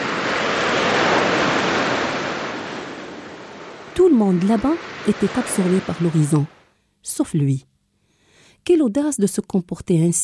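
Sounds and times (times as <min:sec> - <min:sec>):
Mediterranean Sea waves breaking on a shore at Al Hoceima, Morocco: 0:00.0 - 0:06.7
speech: 0:04.2 - 0:07.7, 0:08.6 - 0:10.2.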